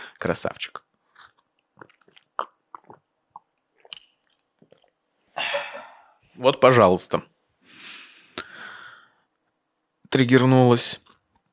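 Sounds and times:
speech: 0:00.2 - 0:00.8, 0:06.4 - 0:07.3, 0:10.1 - 0:11.0
person gulping water while drinking: 0:00.8 - 0:06.1
slurps: 0:01.1 - 0:05.0.

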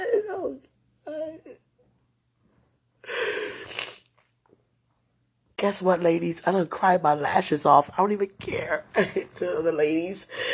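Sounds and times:
speech: 0:00.5 - 0:01.6, 0:05.6 - 0:10.5
person giving a short voiced gasp: 0:03.0 - 0:03.9, 0:10.3 - 0:10.5
person sniffing: 0:03.1 - 0:04.1.

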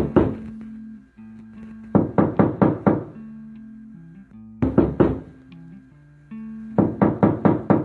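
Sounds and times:
man knocking on a locked bedroom door: 0:00.0 - 0:00.4, 0:02.0 - 0:03.1, 0:04.6 - 0:05.3, 0:06.8 - 0:07.8.

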